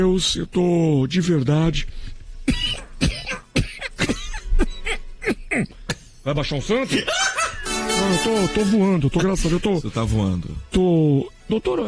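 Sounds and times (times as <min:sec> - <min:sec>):
speech: 0:00.0 - 0:03.2, 0:06.3 - 0:07.3, 0:08.0 - 0:11.8
person coughing: 0:02.4 - 0:06.2.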